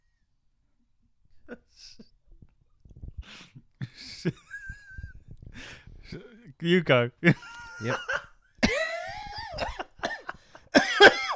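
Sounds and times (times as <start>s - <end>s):
speech: 6.6s - 8.2s
harsh throaty coughing: 8.6s - 11.3s.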